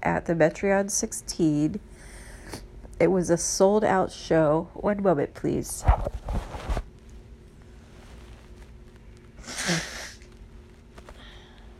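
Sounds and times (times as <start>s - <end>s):
faint steady hum: 0.0s - 11.7s
speech: 0.1s - 6.4s
person blowing their nose: 9.4s - 10.2s.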